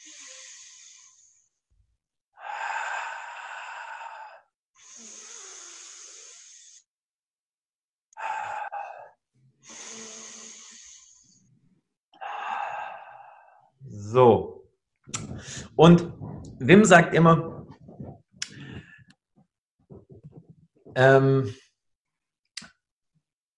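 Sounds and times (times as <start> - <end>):
deep connected breathing into the belly and chest: 0.0 - 1.5, 2.4 - 6.9, 8.2 - 14.1, 15.1 - 19.2
speech: 14.1 - 14.5, 15.8 - 17.5, 21.0 - 21.6.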